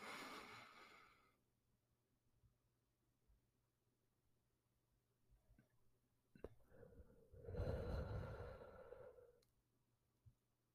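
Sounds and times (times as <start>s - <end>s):
deep breathing in through the nose and out through the mouth: 0.0s - 1.4s, 6.6s - 9.4s.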